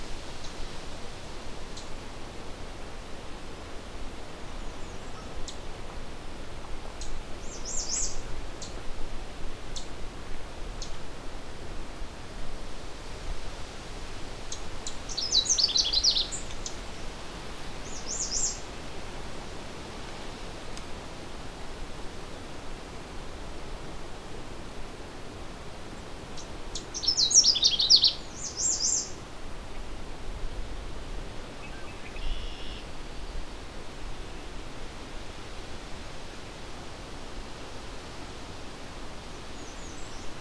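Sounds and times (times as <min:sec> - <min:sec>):
steady hiss: 0:00.0 - 0:40.3
Canada Warbler singing fast warbling whistled phrases: 0:15.1 - 0:16.5, 0:17.8 - 0:18.6, 0:27.0 - 0:29.2, 0:31.6 - 0:33.2.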